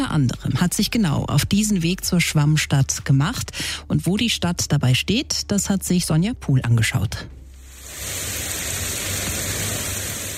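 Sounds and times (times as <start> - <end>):
speech: 0.0 - 7.4
heavy rain from a heat thunderstorm on a small street in Hamburg-Eppendorf Germany: 7.7 - 10.3.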